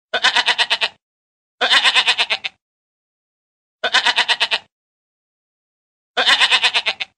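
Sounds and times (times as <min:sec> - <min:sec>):
goat bleating: 0:00.1 - 0:01.0, 0:01.6 - 0:02.6, 0:03.8 - 0:04.7, 0:06.2 - 0:07.1.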